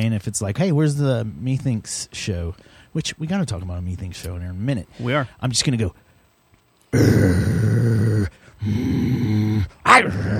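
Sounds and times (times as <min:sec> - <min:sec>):
speech: 0:00.0 - 0:06.0, 0:06.9 - 0:10.3
person growling like an animal: 0:06.9 - 0:10.3.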